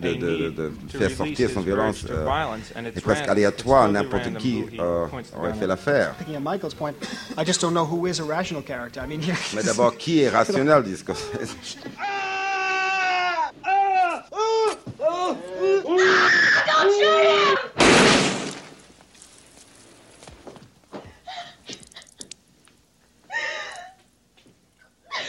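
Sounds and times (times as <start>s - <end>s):
speech: 0.0s - 12.3s
shrill wailing screams and cries from a violent film scene: 11.2s - 17.8s
gunshot in a film scene: 17.8s - 18.8s.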